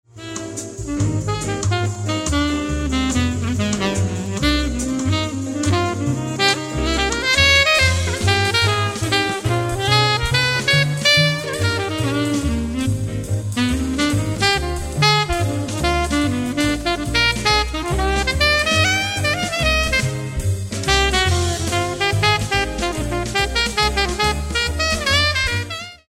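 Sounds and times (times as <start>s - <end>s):
alto saxophone: 0.0s - 26.1s.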